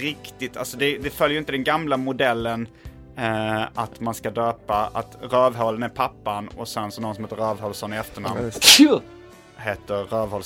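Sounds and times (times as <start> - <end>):
speech: 0.0 - 10.4
short loud sneeze close to the microphone: 8.4 - 9.0.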